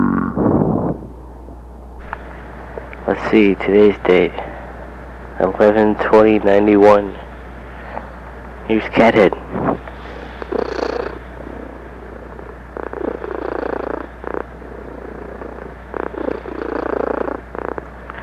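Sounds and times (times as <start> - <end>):
low steady hum: 0.0 - 18.2
speech: 3.2 - 4.5, 5.4 - 7.2, 8.7 - 9.3
cat purring: 10.1 - 18.2.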